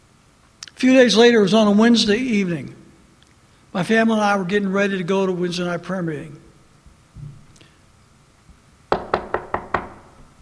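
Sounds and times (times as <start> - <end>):
speech: 0.8 - 2.8, 3.7 - 6.4
knocking on a wooden front door: 8.9 - 10.2.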